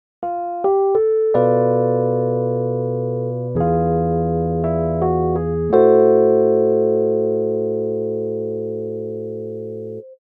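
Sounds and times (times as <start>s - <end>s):
jazz melody over Bm7b5 E7b9 Am6 chords: 0.2s - 10.1s.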